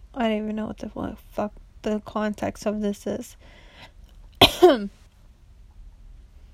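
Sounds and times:
speech: 0.2s - 5.0s
coughing: 4.4s - 5.0s.

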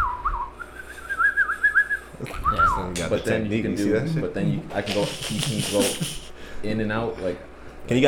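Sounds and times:
person whistling a single sustained note: 0.0s - 2.8s
speech: 3.0s - 8.0s
laughter: 3.8s - 6.4s.

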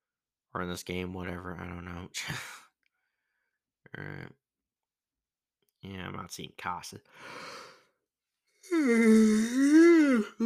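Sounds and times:
speech: 0.5s - 2.6s, 3.9s - 4.4s, 5.8s - 7.7s, 8.6s - 10.4s
person yawning: 8.6s - 10.4s.

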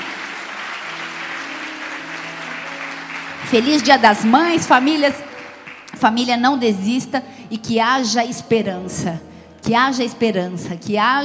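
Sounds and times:
audience applause: 0.0s - 6.0s
speech: 3.5s - 5.3s, 6.0s - 11.2s.

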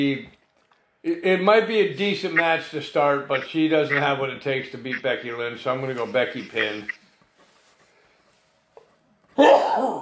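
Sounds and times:
speech: 0.0s - 0.4s, 1.0s - 7.0s, 9.4s - 9.9s
person sneezing: 9.4s - 9.9s.

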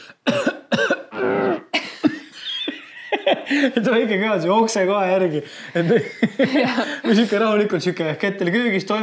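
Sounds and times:
person imitating the retching cough of a sick vomiting dog: 1.0s - 1.8s
laughter: 1.8s - 3.8s, 5.7s - 7.3s
speech: 3.5s - 9.0s.

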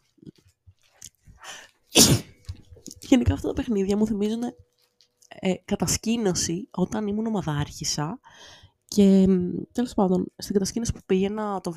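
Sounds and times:
single loud sneeze: 1.9s - 2.4s
speech: 3.2s - 4.7s, 5.4s - 11.7s.

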